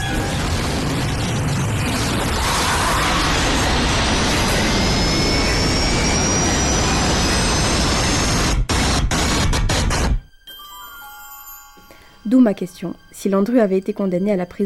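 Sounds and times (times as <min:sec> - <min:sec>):
jet airliner engine roar: 0:00.0 - 0:10.1
high turbine whine of jet airliner engine: 0:00.7 - 0:10.2
speech: 0:12.3 - 0:14.6.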